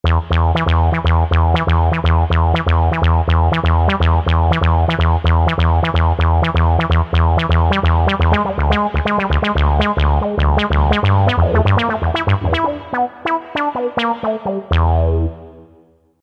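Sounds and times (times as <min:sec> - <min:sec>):
acid bass from a Yamaha PSR-550 XG keyboard: 0:00.0 - 0:15.9.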